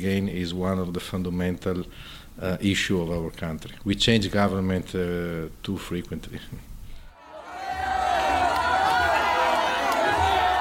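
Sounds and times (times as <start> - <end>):
speech: 0.0 - 6.7
large crowd cheering and shouting at a political rally: 7.2 - 10.6.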